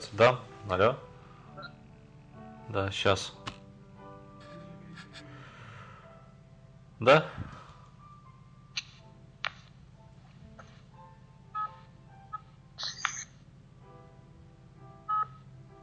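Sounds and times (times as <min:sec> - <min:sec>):
speech: 0:00.1 - 0:01.1, 0:02.7 - 0:03.4, 0:07.0 - 0:07.5
phone beeping with incoming call: 0:01.6 - 0:01.8, 0:11.6 - 0:13.3, 0:15.1 - 0:15.8.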